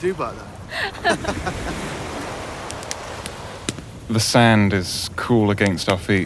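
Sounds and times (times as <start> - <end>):
speech: 0.0 - 2.0, 4.1 - 6.2
sea waves crashing on beach: 0.0 - 6.2
laughter: 0.7 - 2.3
faint crackles: 1.7 - 6.2.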